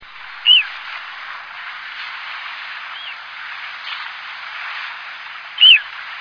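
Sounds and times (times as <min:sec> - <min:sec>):
bird chirping in Higashiosaka, Japan: 0:00.4 - 0:00.7, 0:05.6 - 0:05.8.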